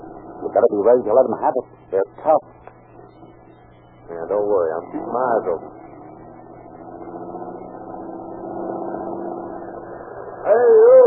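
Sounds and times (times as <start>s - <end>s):
speech: 0.4s - 2.7s, 4.1s - 5.8s
car engine humming: 2.7s - 10.3s.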